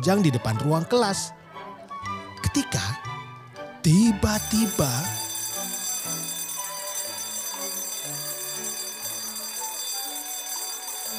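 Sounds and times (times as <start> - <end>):
speech: 0.0 - 1.4, 2.5 - 3.1, 3.8 - 5.2
electronic school bell chiming a melodic tune signalling start of class: 3.9 - 11.1.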